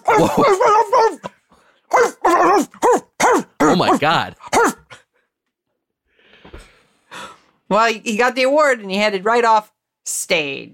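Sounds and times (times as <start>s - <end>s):
dog barking and yipping: 0.0s - 1.3s, 1.9s - 5.0s
speech: 0.2s - 0.7s, 4.0s - 4.4s, 7.7s - 9.7s, 10.3s - 10.7s.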